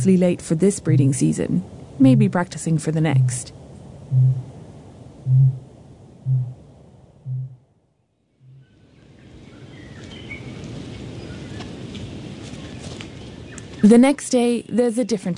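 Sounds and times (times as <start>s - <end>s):
speech: 0.0s - 4.5s, 5.3s - 5.6s, 13.8s - 15.3s
low rumble of wind: 0.0s - 15.3s
steady outdoor hiss: 0.0s - 15.3s
kakapo booming: 4.1s - 4.5s.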